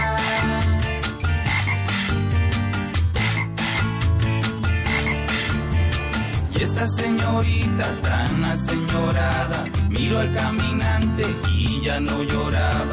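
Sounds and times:
voice imitating frog croaking: 0:00.0 - 0:02.2, 0:03.1 - 0:04.0, 0:04.8 - 0:05.7
loud dense music with a regular beat: 0:00.0 - 0:12.9
speech: 0:06.8 - 0:12.9.

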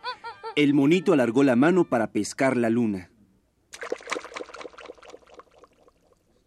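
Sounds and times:
speech: 0:00.6 - 0:03.1
hand splashing water in a well: 0:03.7 - 0:06.3
water dribbling and trickling in a well: 0:03.8 - 0:06.4.

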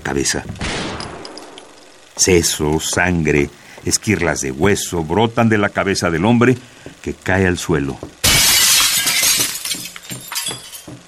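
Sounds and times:
speech: 0:00.1 - 0:01.0, 0:02.2 - 0:08.2
window glass shattering: 0:08.2 - 0:10.9
glass shards tinkling and scattering: 0:08.3 - 0:11.0.

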